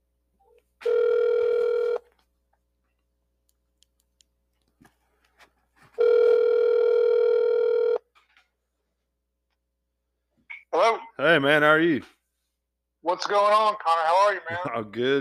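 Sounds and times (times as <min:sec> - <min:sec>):
telephone ringback tone as a phone call is placed: 0:00.8 - 0:02.0, 0:06.0 - 0:08.0
speech: 0:11.4 - 0:12.2, 0:13.1 - 0:15.1.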